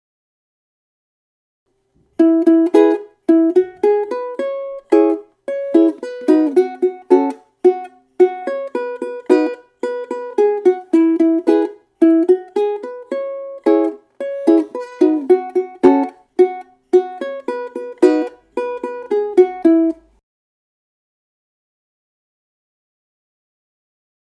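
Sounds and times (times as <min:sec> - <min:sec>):
ukulele intro: 0:02.0 - 0:20.2.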